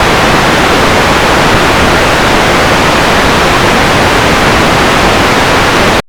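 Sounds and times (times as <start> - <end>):
synthesizer noise: 0.0 - 6.0.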